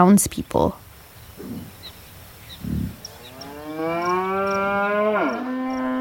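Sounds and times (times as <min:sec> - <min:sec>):
speech: 0:00.0 - 0:00.8
faint bird chirps: 0:00.0 - 0:05.9
cow mooing on a farm: 0:02.6 - 0:05.9.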